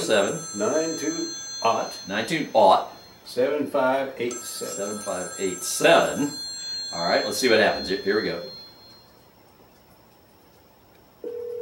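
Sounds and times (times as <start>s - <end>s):
phone line ringback tone through a small Bluetooth speaker: 0.0s - 3.3s, 4.3s - 9.4s, 11.2s - 11.6s
speech: 0.1s - 8.6s.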